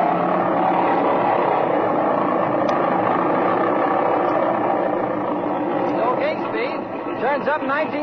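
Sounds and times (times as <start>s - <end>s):
small airplane engine running up at high power before takeoff: 0.0s - 8.0s
speech: 7.5s - 8.0s.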